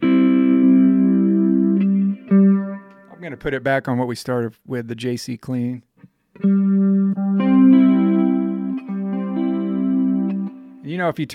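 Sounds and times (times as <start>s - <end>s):
electric guitar chord with flanger effect: 0.0s - 3.4s, 6.4s - 10.9s
speech: 3.2s - 6.6s, 11.0s - 11.3s.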